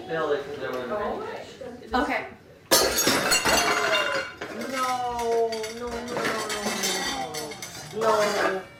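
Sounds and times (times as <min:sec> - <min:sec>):
speech: 0:00.1 - 0:02.4
glass bowl shattering: 0:02.7 - 0:08.5.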